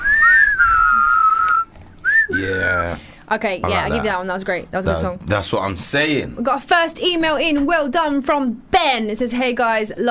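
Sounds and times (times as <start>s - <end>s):
whistle blowing: 0.0s - 2.4s
speech: 2.4s - 10.0s.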